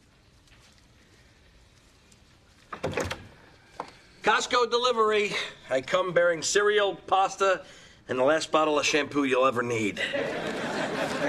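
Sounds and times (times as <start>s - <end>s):
door opening: 2.7s - 3.5s
speech: 4.2s - 11.2s
laughter: 10.0s - 11.2s.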